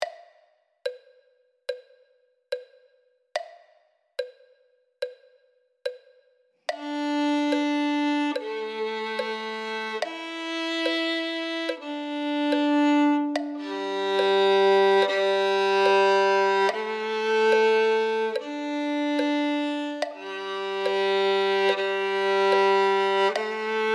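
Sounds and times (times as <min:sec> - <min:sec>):
violin: 0:06.7 - 0:23.9.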